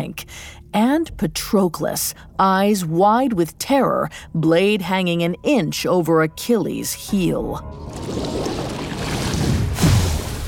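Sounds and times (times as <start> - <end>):
speech: 0.0 - 8.3
loud water splash: 7.9 - 10.4.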